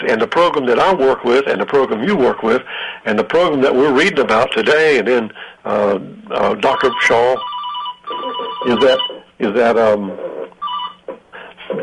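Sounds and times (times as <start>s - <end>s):
speech: 0.1s - 7.5s, 8.1s - 10.3s
telephone ringing: 6.6s - 9.3s, 10.6s - 11.1s.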